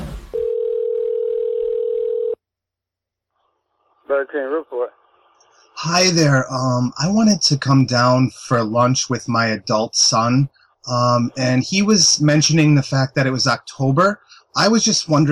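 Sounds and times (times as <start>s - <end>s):
telephone line ringing with an electronic tone: 0.3s - 2.4s
speech: 4.3s - 5.0s, 5.8s - 15.2s.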